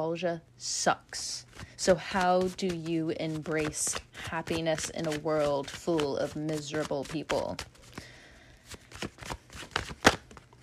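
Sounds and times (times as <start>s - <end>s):
speech: 0.0s - 8.1s
tarot cards being shuffled and drawn: 1.4s - 10.6s
card slap: 8.9s - 10.4s.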